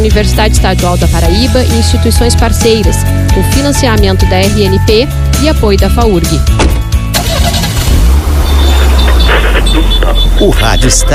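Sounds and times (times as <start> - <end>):
car engine cranking, starting and rumbling in traffic: 0.0 - 11.1
speech: 0.1 - 6.9, 9.7 - 11.1.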